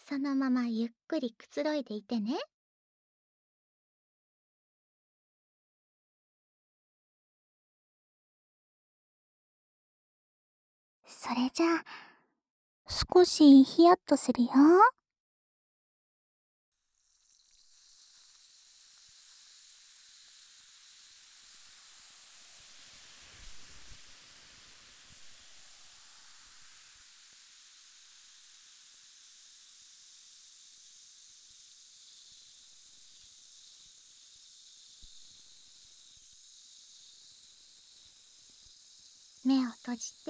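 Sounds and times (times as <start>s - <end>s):
speech: 0.1s - 2.5s, 11.2s - 12.1s, 12.9s - 15.0s, 39.5s - 40.2s
carbonation bubbles fizzing in ear: 16.9s - 40.2s.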